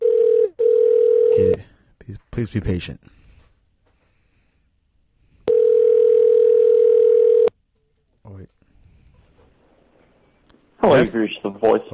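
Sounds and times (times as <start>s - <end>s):
telephone dial tone while a call is being placed: 0.0s - 1.5s, 5.5s - 7.5s
speech: 2.4s - 3.2s, 11.1s - 11.9s.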